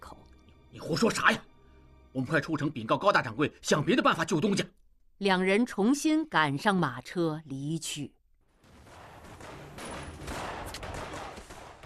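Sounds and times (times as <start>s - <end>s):
speech: 0.9s - 1.5s, 2.1s - 8.2s
gunfire echoing across the city: 8.6s - 11.8s.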